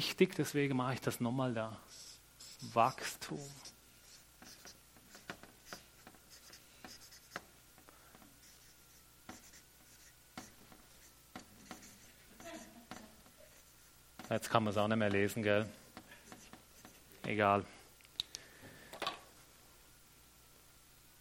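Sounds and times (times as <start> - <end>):
speech: 0.0 - 2.0, 2.6 - 3.7, 14.3 - 15.8, 17.3 - 17.8
pen that writes poorly scratching across a board: 1.9 - 14.4, 15.9 - 17.1.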